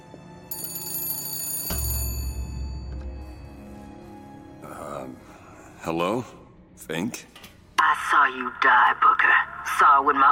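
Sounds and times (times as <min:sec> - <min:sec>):
old-style telephone bell ringing: 0:00.5 - 0:03.5
speech: 0:04.7 - 0:07.5, 0:08.3 - 0:10.2.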